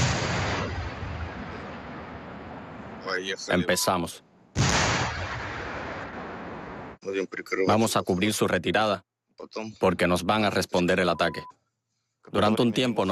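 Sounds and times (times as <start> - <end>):
tank gunfire in trench combat: 0.0 - 2.3, 4.6 - 6.3
speech: 3.1 - 4.3, 7.1 - 11.6, 12.2 - 13.1.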